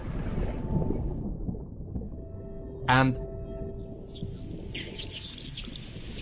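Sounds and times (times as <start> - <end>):
thousands of herring swimming underwater beneath a boat at a fishing trap: 0.0 - 6.2
speech: 2.9 - 3.3
fizzing crackly hiss of herring underwater: 4.1 - 6.2.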